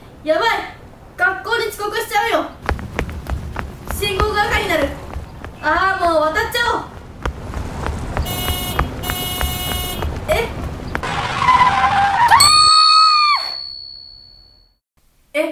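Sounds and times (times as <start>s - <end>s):
street noise: 0.0s - 12.8s
speech: 0.2s - 0.7s
truck tires screeching in a skid: 2.6s - 12.4s
horn-like blare: 8.3s - 10.0s.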